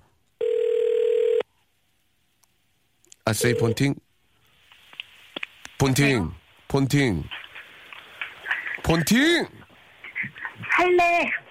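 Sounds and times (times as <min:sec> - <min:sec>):
outgoing telephone call dial tone: 0:00.4 - 0:01.4, 0:03.4 - 0:03.8
speech: 0:03.3 - 0:04.0, 0:05.8 - 0:07.4, 0:08.8 - 0:09.6, 0:10.8 - 0:11.4.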